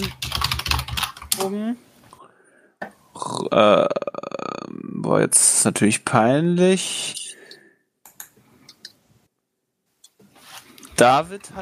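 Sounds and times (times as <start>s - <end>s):
computer keyboard typing during an online call: 0.0s - 1.5s, 8.0s - 8.9s
speech: 1.4s - 1.9s, 3.5s - 4.0s, 4.8s - 7.2s, 11.0s - 11.5s.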